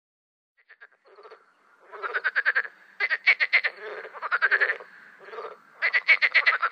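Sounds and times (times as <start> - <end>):
Marsh frog giving laughing rattles: 2.0 - 6.6.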